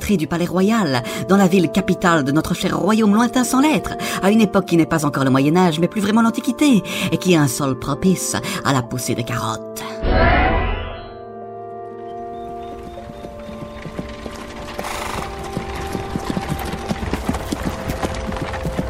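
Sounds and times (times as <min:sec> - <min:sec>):
speech: 0:00.1 - 0:10.4
low sustained tonal drone humming: 0:10.0 - 0:12.7
horse hooves clip-clopping at a walking pace: 0:12.2 - 0:18.8.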